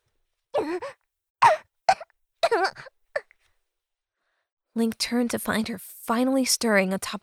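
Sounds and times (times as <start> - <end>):
speech: 0.7 - 1.0, 4.8 - 7.2
person coughing hoarse and rasping: 1.4 - 2.9.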